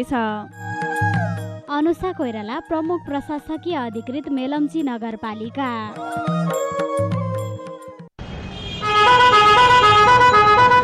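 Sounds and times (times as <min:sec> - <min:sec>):
speech: 0:00.0 - 0:00.8, 0:01.8 - 0:06.8
horn blaring from a vehicle about to depart: 0:08.4 - 0:10.8.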